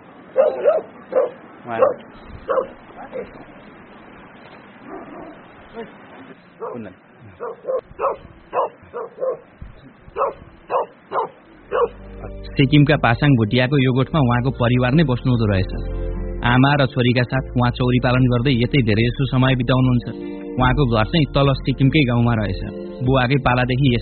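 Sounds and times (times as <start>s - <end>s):
dogs barking near a yak herders' hut in Sikkim: 0.3s - 3.4s, 4.8s - 5.5s, 6.5s - 12.4s
speech: 0.4s - 3.8s, 4.9s - 10.5s, 11.7s - 24.0s.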